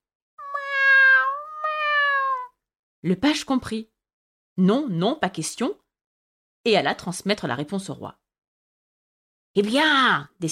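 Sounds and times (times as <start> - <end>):
cat meowing: 0.4 - 2.6
speech: 3.0 - 3.9, 4.6 - 5.8, 6.6 - 8.2, 9.6 - 10.5.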